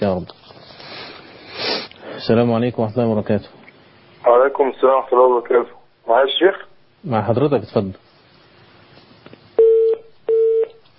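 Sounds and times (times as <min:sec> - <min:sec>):
speech: 0:00.0 - 0:00.5, 0:02.2 - 0:03.6, 0:04.2 - 0:08.0
telephone line disconnect tones: 0:09.6 - 0:10.8.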